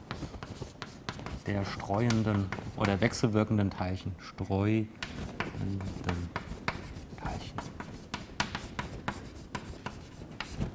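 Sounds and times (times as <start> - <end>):
writing on a board during a physics lecture: 0.0 - 3.3, 5.0 - 10.7
speech: 1.5 - 6.4.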